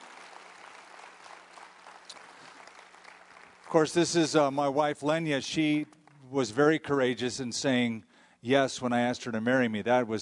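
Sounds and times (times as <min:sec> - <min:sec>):
audience applause greeting a panel coming onstage: 0:00.0 - 0:04.4
speech: 0:03.7 - 0:10.1.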